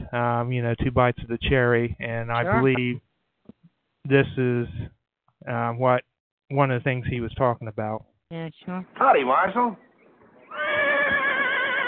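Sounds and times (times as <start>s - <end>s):
speech: 0.1s - 3.1s, 4.0s - 9.8s
horse whinnying: 10.4s - 11.8s.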